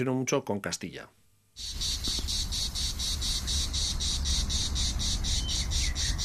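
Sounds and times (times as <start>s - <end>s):
speech: 0.0s - 2.0s
low rumbling noise: 0.0s - 6.2s
cicada singing in rapid pulses: 1.6s - 6.2s.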